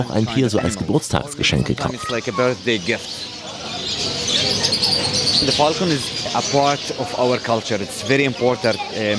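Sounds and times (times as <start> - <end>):
speech: 0.0 - 4.2, 4.9 - 9.1
birds of various kinds chirping and twittering at an animal market: 0.0 - 9.1.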